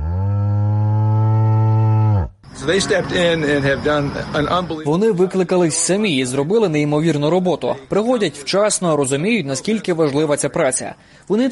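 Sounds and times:
cow mooing on a dairy farm in Vermont, United States: 0.0 - 2.4
barn noise on a dairy farm in Vermont: 0.0 - 3.2
speech: 2.6 - 11.5.

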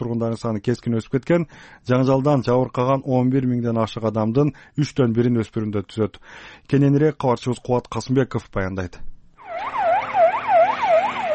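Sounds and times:
speech: 0.0 - 9.8
ambulance siren wailing after an attack in Afghanistan: 9.4 - 11.3.

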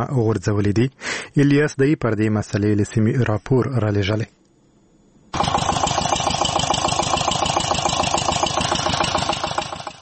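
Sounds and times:
speech: 0.0 - 4.4, 5.3 - 5.5
faint low hum: 0.0 - 5.4
water pump engine drawing water from deep wells for melon fields in Helmand: 5.4 - 10.0.

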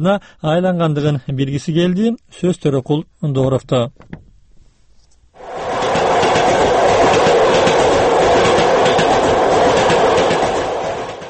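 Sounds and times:
speech: 0.0 - 4.2
crowded passenger train rumbling: 5.4 - 11.2
rhythmic clatter of train wheels: 5.7 - 11.2.

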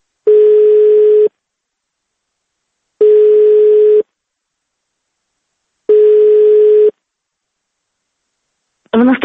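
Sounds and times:
telephone ringback tone from an unanswered call: 0.3 - 1.3, 3.0 - 4.0, 5.9 - 6.9.

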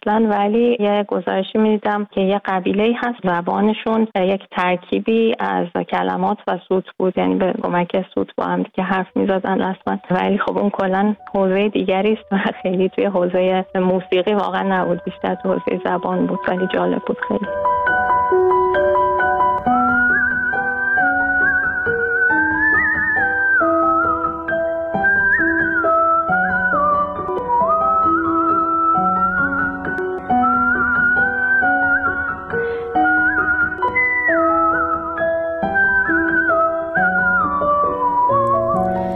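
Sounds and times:
speech: 0.0 - 18.4
instrumental accompaniment: 17.1 - 36.8, 37.8 - 39.1
person whistling a melodic tune: 19.6 - 39.1.

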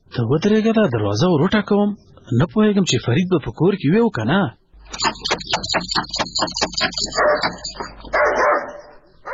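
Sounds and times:
speech: 0.2 - 8.8
dog barking: 6.8 - 9.3.

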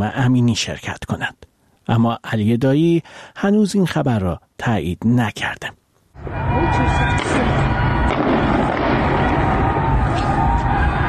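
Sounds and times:
speech: 0.0 - 7.8
dense outdoor protest crowd roaring: 6.2 - 11.0
gunshots: 7.0 - 10.5.

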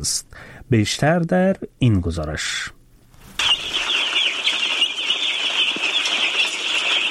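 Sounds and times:
speech: 0.0 - 2.8
large crowd of day-old baby chicks peeping in a poultry farm: 3.4 - 7.0.

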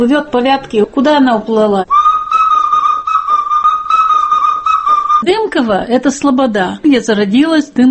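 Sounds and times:
speech: 0.0 - 2.0, 5.2 - 7.8
clay toy whistle blown with shrill warbling tone: 1.9 - 5.2.

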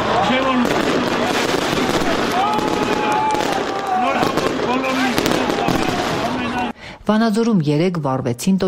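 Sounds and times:
fireworks exploding at a New Year tree-lighting celebration in a town square: 0.0 - 6.7
crowd voices and cheering in a town square: 0.0 - 6.8
speech: 7.1 - 8.6.

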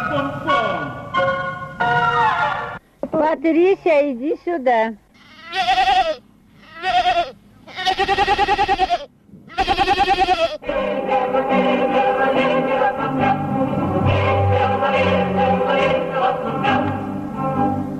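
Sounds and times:
dense continuous music-like tones: 0.0 - 2.8, 10.6 - 17.9
speech: 3.3 - 5.8, 8.0 - 9.2
goat bleating: 5.1 - 10.6.

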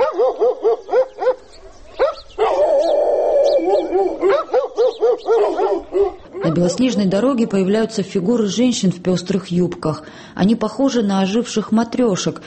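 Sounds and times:
several dogs in a quiet village barking furiously: 0.0 - 6.8
speech: 6.6 - 12.4.

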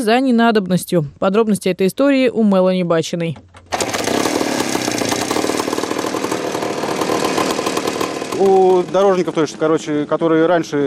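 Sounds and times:
speech: 0.0 - 3.6, 8.4 - 10.8
rail handcar driven by a small motorcycle engine running: 3.8 - 10.0.

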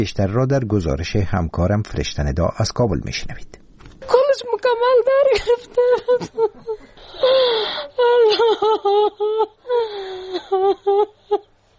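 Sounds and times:
speech: 0.0 - 3.6, 4.4 - 11.5
woman wailing and sobbing in grief: 4.9 - 11.5.

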